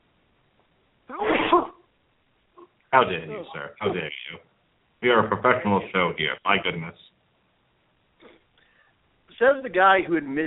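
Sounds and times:
person sneezing: 1.1s - 1.8s
speech: 3.0s - 7.1s, 9.4s - 10.4s.

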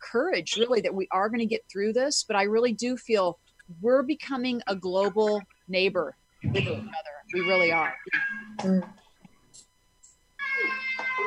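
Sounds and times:
speech: 0.1s - 9.0s
person imitating cat meows: 10.4s - 11.2s.

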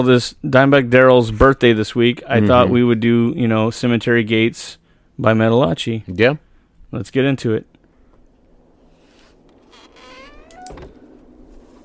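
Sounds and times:
speech: 0.0s - 7.7s
faint hum: 0.0s - 11.8s
old door creaking open: 8.9s - 11.8s.

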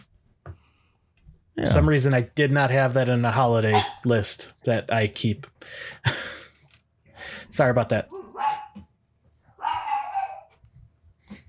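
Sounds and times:
speech: 1.6s - 6.3s, 7.5s - 8.2s
dog barking excitedly: 3.7s - 4.1s, 8.1s - 8.9s, 9.6s - 10.5s.

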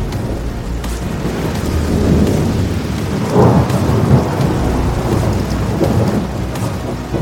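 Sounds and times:
deep rumbling thunder: 0.0s - 7.1s
torrential rain pouring down: 0.0s - 7.1s.

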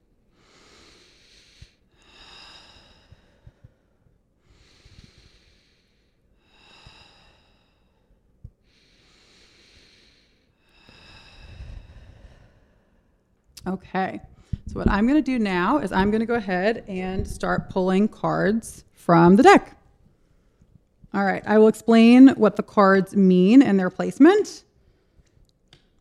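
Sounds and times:
group breathing slowly and deeply at a tarot reading night: 0.4s - 13.4s, 14.3s - 14.8s
speech: 13.6s - 19.8s, 21.2s - 24.7s.

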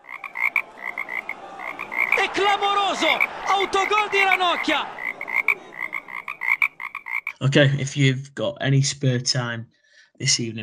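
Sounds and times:
frog croaking: 0.0s - 2.2s, 5.0s - 7.4s
laughter: 0.0s - 6.6s
speech: 2.4s - 5.0s, 7.4s - 10.6s.

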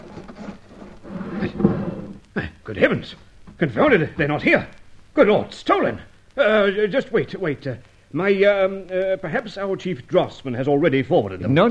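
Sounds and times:
secret wooden desk drawer sliding open: 0.0s - 2.2s
speech: 2.4s - 11.6s.

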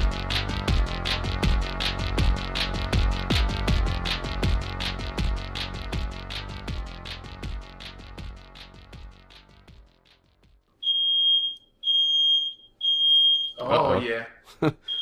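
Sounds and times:
music: 0.0s - 10.7s
fire alarm: 10.8s - 13.6s, 14.9s - 15.0s
laughter: 14.5s - 14.9s.

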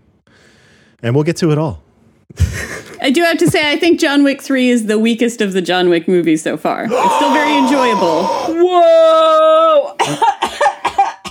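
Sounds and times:
speech: 1.0s - 10.3s
drawn-out vocal exclamation: 6.9s - 9.9s
harsh choppy coughs: 10.0s - 11.3s.

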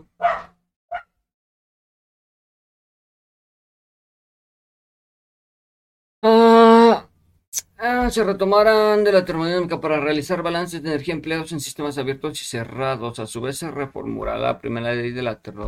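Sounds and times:
dog barking: 0.2s - 1.1s
speech: 7.8s - 15.6s.

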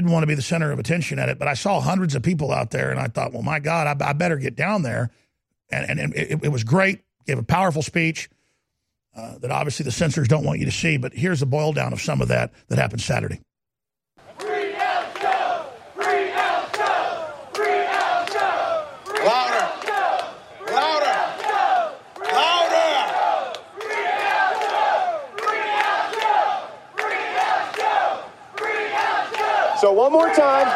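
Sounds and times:
speech: 0.0s - 8.4s, 9.1s - 13.5s, 29.8s - 30.7s
large crowd shouting a battle cry in unison in Austin: 14.3s - 30.7s.

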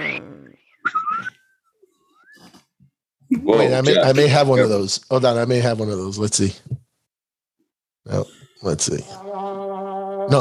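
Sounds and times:
person whistling sliding pitches imitating a slide whistle: 0.8s - 2.5s
speech: 3.4s - 6.8s, 8.1s - 9.3s.

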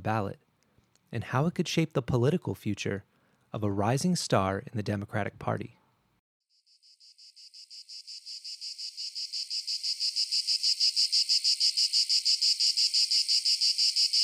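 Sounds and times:
speech: 0.0s - 0.4s, 1.1s - 5.8s
periodical cicadas buzzing in chorus: 6.5s - 14.2s.

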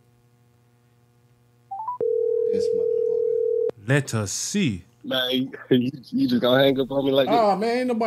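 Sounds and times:
low electrical hum: 0.0s - 8.0s
incoming phone call tone: 1.7s - 3.7s
speech: 3.9s - 8.0s.

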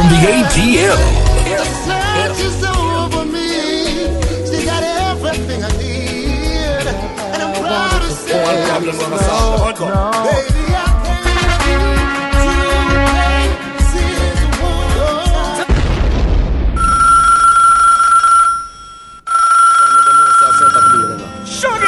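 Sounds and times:
music: 0.0s - 16.1s, 20.1s - 21.8s
speech: 0.1s - 2.6s, 8.5s - 10.6s
deep boom rumbling: 15.7s - 16.8s
telephone ringing with electronic trilling: 16.8s - 21.8s.

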